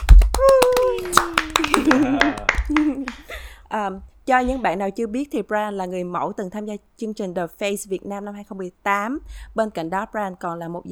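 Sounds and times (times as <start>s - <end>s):
small group clapping to welcome a guest: 0.0s - 3.4s
person cheering and talking loudly: 0.4s - 2.6s
laughter: 1.1s - 3.3s
speech: 1.9s - 2.2s, 3.7s - 10.9s.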